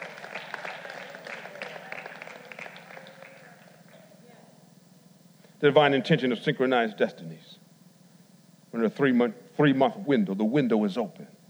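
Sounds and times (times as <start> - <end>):
audience clapping: 0.0 - 4.2
murmur of voices: 0.0 - 4.8
speech: 5.6 - 7.6, 8.7 - 11.3.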